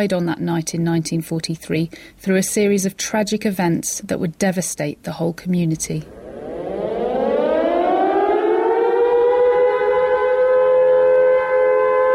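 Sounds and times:
speech: 0:00.0 - 0:06.2
World War II air raid siren wailing during a blackout: 0:06.1 - 0:12.1.

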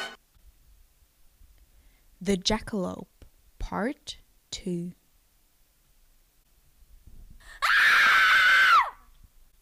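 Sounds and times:
speech: 0:02.2 - 0:03.1, 0:03.7 - 0:05.0
person screaming: 0:07.6 - 0:09.0.

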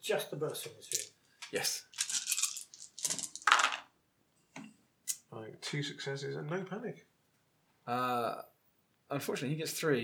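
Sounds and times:
speech: 0:00.0 - 0:02.0, 0:05.3 - 0:07.1, 0:07.9 - 0:08.5, 0:09.1 - 0:10.0
dice rolling on a hard tabletop: 0:00.9 - 0:01.1, 0:01.9 - 0:03.9.

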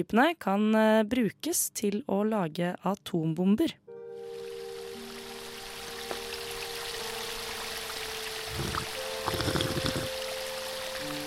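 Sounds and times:
speech: 0:00.0 - 0:03.8
water pouring into a clean glass: 0:07.6 - 0:11.2.

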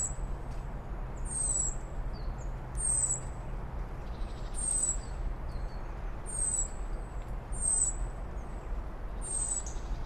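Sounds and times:
birds singing at dawn in a forest: 0:00.0 - 0:00.2, 0:01.2 - 0:03.4, 0:04.0 - 0:10.0
steady low rumble and hiss: 0:00.0 - 0:10.0.

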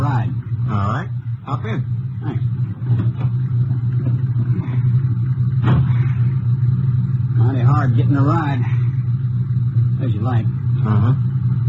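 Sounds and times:
car engine running as the car pulls away: 0:00.0 - 0:11.6
speech: 0:01.6 - 0:02.0, 0:07.9 - 0:08.6
faint clatter: 0:02.3 - 0:07.4.

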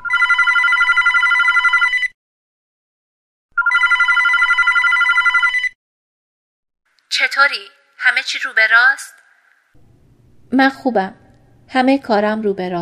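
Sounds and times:
telephone ringing in electronic trilling bursts: 0:00.0 - 0:02.2, 0:03.6 - 0:05.8
speech: 0:07.4 - 0:09.2, 0:10.5 - 0:12.8.

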